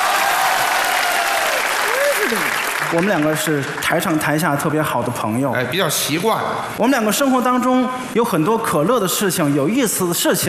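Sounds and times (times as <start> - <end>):
audience at a live stage show applauding: 0.0 - 4.2
speech: 2.3 - 10.4.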